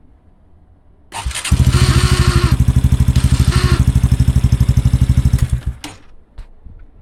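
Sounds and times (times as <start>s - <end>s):
Supercub 110 Pro motorcycle abnormal noise: 1.1s - 6.2s.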